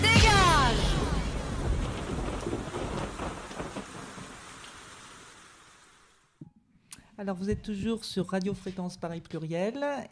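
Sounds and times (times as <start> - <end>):
deep thunder rumbling: 0.2 - 5.5
steady rain: 0.3 - 6.4
speech: 7.2 - 10.1.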